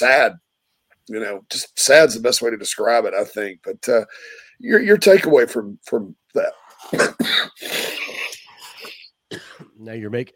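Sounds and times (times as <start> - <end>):
speech: 0.0 - 0.4, 1.1 - 8.0, 9.3 - 10.3
wheezy breathy bursts: 4.1 - 4.6, 6.6 - 9.2
harsh raspy coughs: 6.4 - 10.3.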